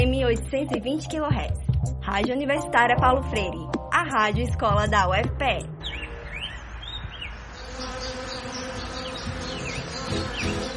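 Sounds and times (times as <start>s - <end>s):
speech: 0.3s - 6.0s
swarm of stingless bees buzzing: 5.8s - 10.7s.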